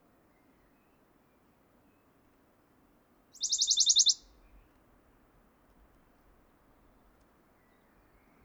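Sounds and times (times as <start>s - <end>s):
faint background hiss: 0.0s - 8.4s
Western Bonelli's warbler song trill: 3.4s - 4.2s.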